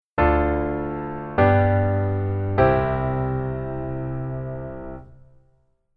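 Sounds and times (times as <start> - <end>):
low keyboard voicing: 0.2 - 5.4.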